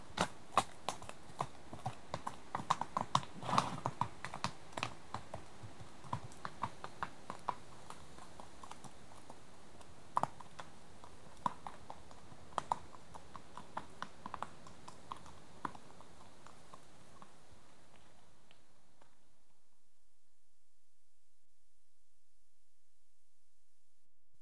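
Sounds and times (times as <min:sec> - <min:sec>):
horse hooves clopping: 0:00.0 - 0:19.3
steady background hiss: 0:00.0 - 0:20.8.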